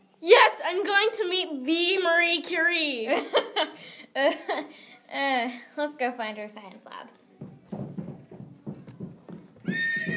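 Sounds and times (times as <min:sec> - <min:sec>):
speech: 0:00.7 - 0:07.2
horse's hooves clip-clopping on hard ground: 0:07.4 - 0:10.1
horse letting out a loud shrill neigh: 0:09.6 - 0:10.1.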